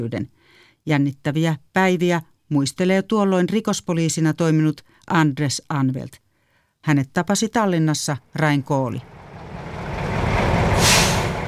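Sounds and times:
speech: 0.0 - 6.2, 6.8 - 9.2
heavy tanks rumbling along a city street: 9.0 - 11.4
sharp burst of hissing: 10.6 - 11.4.

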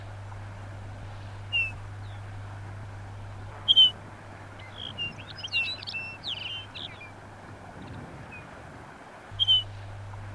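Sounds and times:
faint background hum: 0.0 - 10.3
Lapland bunting chirping and twittering: 1.5 - 2.3, 3.6 - 4.0, 4.6 - 7.2, 9.4 - 9.8.

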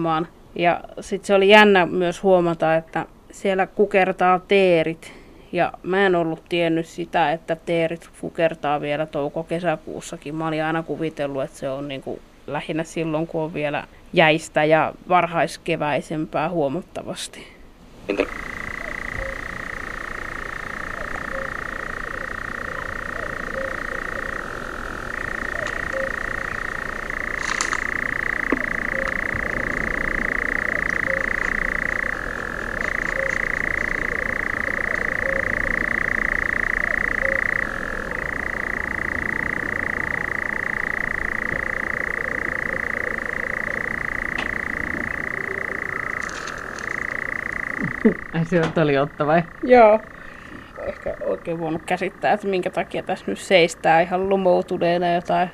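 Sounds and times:
speech: 0.0 - 19.3, 48.5 - 50.2, 51.4 - 55.5
European nightjar churring: 18.1 - 55.5.

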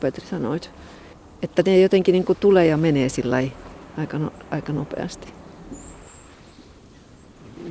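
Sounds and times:
speech: 0.0 - 5.4
low steady outdoor rumble: 0.0 - 7.6
thin high-pitched goldcrest calls within a mixed flock of tits: 5.6 - 7.4.

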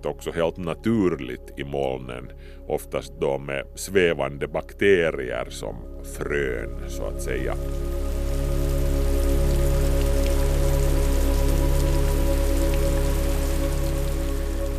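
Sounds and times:
speech: 0.0 - 8.1
steady rain falling: 6.1 - 14.7.

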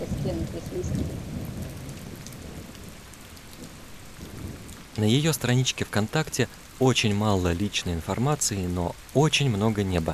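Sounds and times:
deep rolling thunder rumble: 0.0 - 5.5
steady rain in a thunderstorm: 0.0 - 10.1
speech: 0.3 - 1.1, 5.0 - 10.1.

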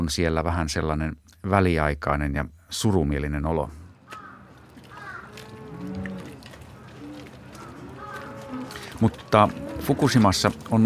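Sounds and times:
speech: 0.0 - 3.8, 9.0 - 10.8
busy hum: 0.1 - 10.8
cattle mooing on a farm in Fukushima on a foggy morning: 4.0 - 10.8.

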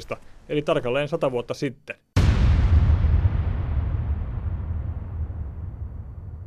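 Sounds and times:
speech: 0.0 - 2.1
ammunition depot explosion: 2.2 - 6.4.

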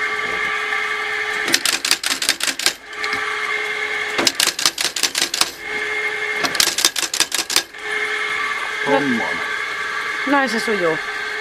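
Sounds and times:
belt-driven shoe factory machine humming: 0.0 - 11.3
belt-driven shoe factory machine tapping: 1.5 - 2.8, 4.2 - 5.6, 6.4 - 7.8
speech: 8.9 - 9.5, 10.2 - 11.1.

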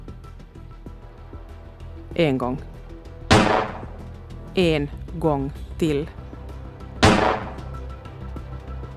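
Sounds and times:
speech: 2.1 - 2.7, 4.6 - 6.2
pistol shot: 3.3 - 4.0, 7.0 - 7.8.

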